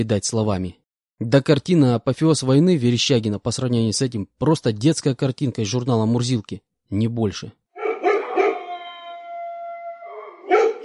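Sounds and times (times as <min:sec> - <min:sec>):
speech: 0:00.0 - 0:07.6
pack of stray dogs barking across a quarry: 0:07.8 - 0:09.2, 0:10.2 - 0:10.8
stray dog howling across a quarry: 0:07.8 - 0:10.8.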